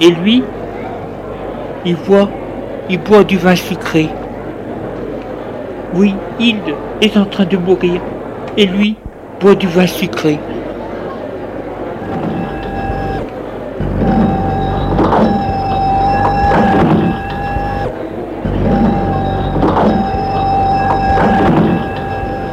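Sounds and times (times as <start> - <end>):
speech: 0.0 - 0.6, 1.8 - 4.2, 5.9 - 10.6
steady humming tone: 11.3 - 22.5
café door mechanism whirring: 11.8 - 22.5.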